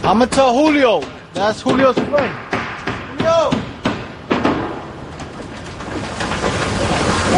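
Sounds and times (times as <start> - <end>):
speech: 0.0 - 2.5, 3.2 - 3.6
water pumping into a wooden tank: 4.9 - 7.3.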